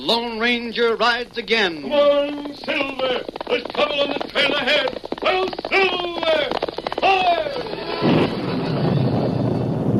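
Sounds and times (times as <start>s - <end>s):
speech: 0.0s - 8.4s
loud thunder crash rolling into broad rumble: 8.0s - 9.9s.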